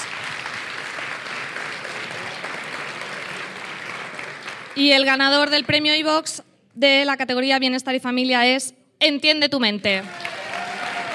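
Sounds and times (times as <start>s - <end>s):
audience applause at an awards ceremony: 0.0s - 5.8s, 10.1s - 11.1s
speech: 4.8s - 10.3s.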